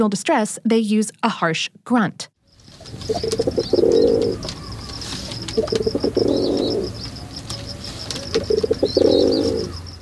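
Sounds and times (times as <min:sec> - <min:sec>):
speech: 0:00.0 - 0:02.3, 0:02.9 - 0:04.6, 0:05.6 - 0:06.5
faint chirping from other birds: 0:02.4 - 0:09.9
rock pigeon cooing: 0:02.8 - 0:09.9.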